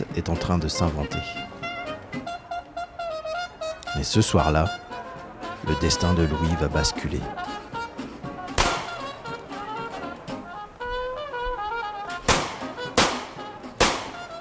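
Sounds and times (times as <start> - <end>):
busy tonal background: 0.0 - 14.3
speech: 0.1 - 1.5, 4.0 - 4.8, 5.6 - 7.5
pistol shots fired into the air during New Year's Eve celebrations in New Orleans: 8.6 - 9.2, 12.2 - 14.3.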